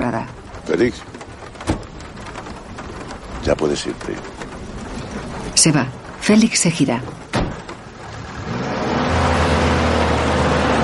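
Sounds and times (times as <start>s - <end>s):
Guardia Civil police car engines pulling away in fog near a forest: 0.0s - 10.8s
speech: 0.1s - 1.2s, 3.4s - 4.3s, 5.6s - 7.3s.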